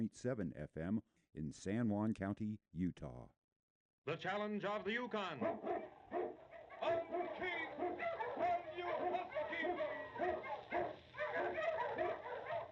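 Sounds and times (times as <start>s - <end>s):
speech: 0.0s - 3.4s, 4.0s - 5.7s
sled dog barking and yipping: 5.4s - 12.6s.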